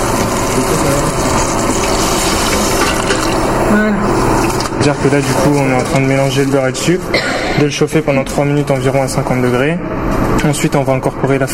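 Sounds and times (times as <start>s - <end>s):
water being poured for cooking: 0.0s - 6.0s
speech: 4.8s - 11.5s.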